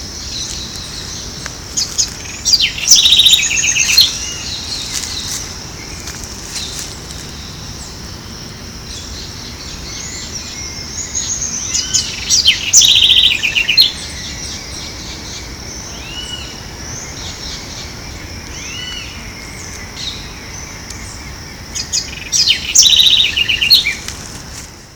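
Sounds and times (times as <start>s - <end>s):
southern house wren Troglodytes musculus singing in Ibirapuera Park, São Paulo, Brazil: 0.0s - 24.9s.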